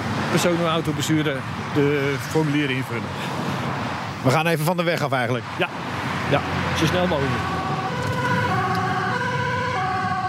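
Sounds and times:
emergency vehicle engine rumbling: 0.0 - 10.2
road noise: 0.0 - 10.2
speech: 0.3 - 3.4, 4.2 - 7.6
emergency vehicle siren wailing: 6.8 - 10.2.

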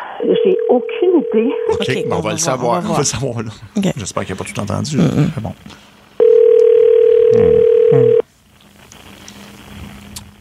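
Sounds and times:
low noise: 0.0 - 10.3
telephone ringback tone on an outgoing call: 0.2 - 2.2, 6.2 - 8.2
speech: 0.2 - 5.9, 7.3 - 8.2.

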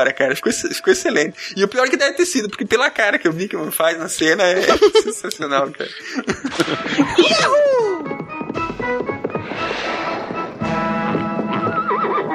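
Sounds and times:
speech: 0.0 - 7.9
laughter: 4.5 - 8.1
horse hooves clip-clopping: 6.5 - 12.3
horse whinnying with rising and falling neighs: 11.5 - 12.3.

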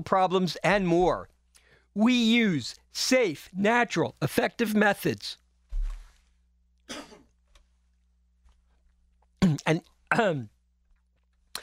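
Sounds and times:
speech: 0.0 - 1.3, 2.0 - 5.4, 9.5 - 10.5
person clearing throat: 6.9 - 7.3, 9.4 - 10.5
person coughing: 6.9 - 7.3, 9.4 - 10.4.

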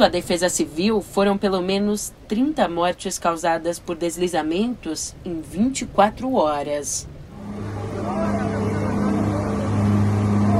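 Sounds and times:
speech: 0.0 - 7.7
heavy army truck engine droning through floodwater: 7.2 - 10.5
indistinct voices: 7.3 - 10.5.

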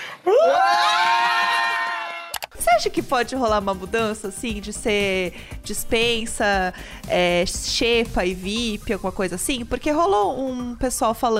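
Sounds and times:
person screaming loudly: 0.3 - 2.3
speech: 2.8 - 11.3.

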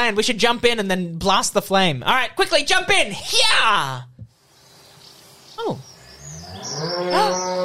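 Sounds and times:
speech: 0.1 - 4.1, 5.6 - 5.9, 6.6 - 7.6
faint high bird chirps: 4.4 - 7.6
cow mooing: 6.3 - 7.6.

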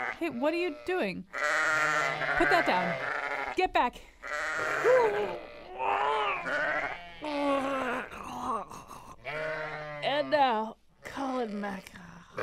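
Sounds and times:
Icelandic sheep bleating: 0.0 - 3.6, 4.2 - 8.1, 9.2 - 10.6
speech: 0.2 - 1.5, 2.2 - 6.6, 11.4 - 12.0.

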